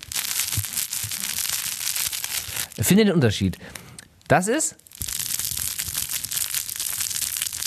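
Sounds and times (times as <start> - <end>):
crinkly fabric crocodile baby toy being squeezed and kneaded: 0.0 - 2.9, 4.8 - 7.6
speech: 2.8 - 4.9.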